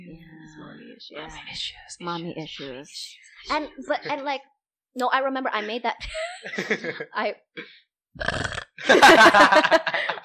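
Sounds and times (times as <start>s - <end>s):
speech: 1.0s - 10.2s
laughter: 6.0s - 7.2s, 8.8s - 10.2s
loud drawn-out gurgling burp: 8.2s - 9.0s.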